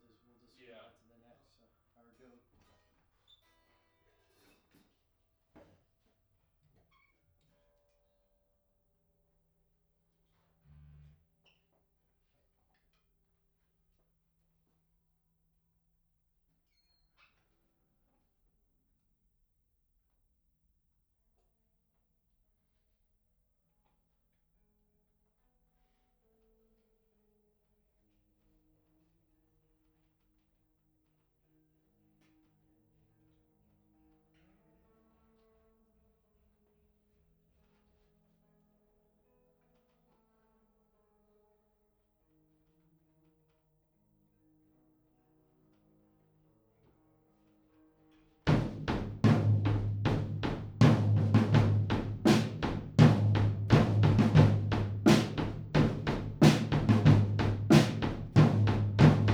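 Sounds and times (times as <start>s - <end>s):
drums: 48.5s - 59.3s.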